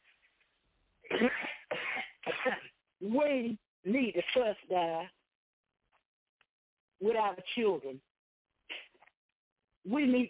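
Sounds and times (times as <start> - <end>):
speech: 1.1 - 1.4, 3.1 - 5.2, 7.0 - 8.1, 9.8 - 10.2
person coughing: 1.1 - 2.8.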